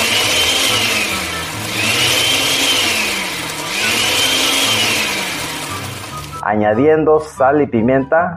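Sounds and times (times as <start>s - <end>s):
blender pureeing cooked tomato garlic serrano chiles and onion: 0.0s - 6.4s
speech: 6.5s - 8.3s.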